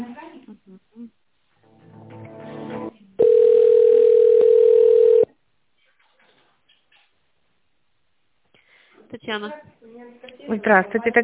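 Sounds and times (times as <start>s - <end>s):
telephone beeps during call transfer: 3.2s - 5.3s
speech: 9.3s - 11.2s.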